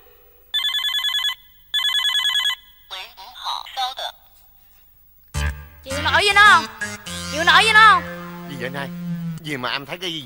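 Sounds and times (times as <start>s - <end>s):
latest-model Nokia mobile phone ringing with electronic trilling: 0.6s - 2.9s
speech: 6.2s - 10.2s.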